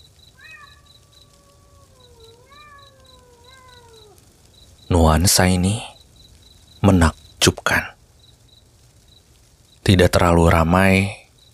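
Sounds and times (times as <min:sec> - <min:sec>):
faint high chirping: 0:00.0 - 0:11.5
mother cat meowing, calling for her kittens: 0:00.3 - 0:04.2
speech: 0:04.9 - 0:05.9, 0:06.8 - 0:07.9, 0:09.9 - 0:11.2.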